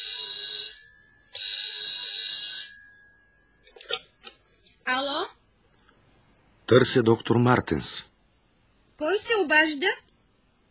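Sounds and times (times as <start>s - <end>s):
telephone ringing in electronic trills: 0.0s - 5.0s
speech: 4.9s - 5.4s, 6.7s - 8.1s, 9.0s - 10.0s.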